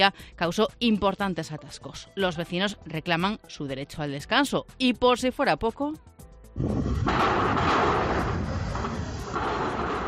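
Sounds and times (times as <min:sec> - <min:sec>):
speech: 0:00.0 - 0:07.7
heavy metal clank: 0:06.9 - 0:10.0.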